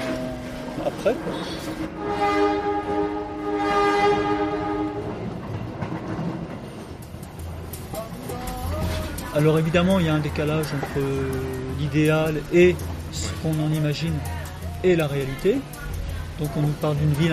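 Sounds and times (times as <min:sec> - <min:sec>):
train horn blaring: 0:00.0 - 0:05.4
rail car wheels clattering on track: 0:00.0 - 0:17.3
rumble of a moving train: 0:00.0 - 0:17.3
speech: 0:00.8 - 0:03.1, 0:09.4 - 0:15.8, 0:16.4 - 0:17.3.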